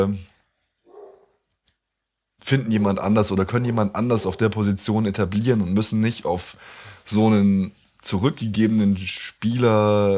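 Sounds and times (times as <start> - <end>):
speech: 0.0 - 0.3, 2.5 - 10.1
dog bark: 0.9 - 1.4.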